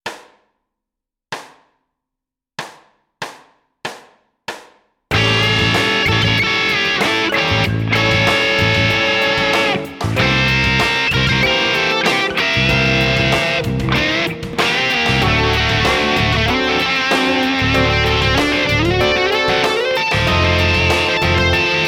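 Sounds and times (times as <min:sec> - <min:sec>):
creative rock music: 0:05.1 - 0:21.8.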